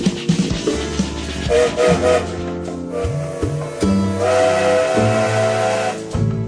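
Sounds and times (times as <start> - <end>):
steam train departing rumbling: 0.0 - 6.3
steam train whistle: 1.5 - 6.2.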